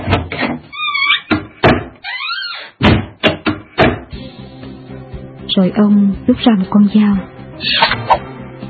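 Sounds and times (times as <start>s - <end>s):
doors and windows being shut with solid thuds: 0.0s - 2.0s, 2.6s - 4.1s
speech: 5.6s - 8.2s.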